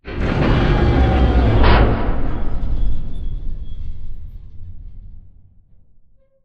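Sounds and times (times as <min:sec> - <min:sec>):
robot arm tilting down close: 0:00.1 - 0:03.9.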